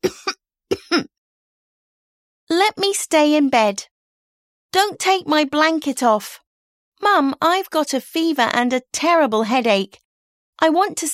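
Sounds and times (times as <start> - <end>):
person coughing forceful double coughs: 0.0 - 1.1
speech: 2.6 - 3.9, 4.7 - 6.4, 7.0 - 10.0, 10.6 - 11.1.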